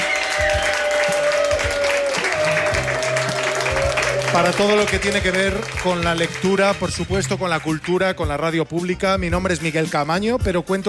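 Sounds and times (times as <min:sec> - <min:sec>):
audience applause at a book fair: 0:00.0 - 0:08.0
speech: 0:04.4 - 0:10.8.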